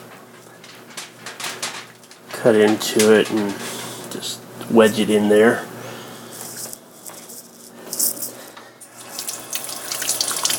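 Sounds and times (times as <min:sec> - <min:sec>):
kitchen utensils clinking and rattling as they are rinsed: 0:00.0 - 0:04.2, 0:06.5 - 0:10.5
speech: 0:02.4 - 0:05.7
tap water running into a kitchen sink: 0:08.9 - 0:10.5.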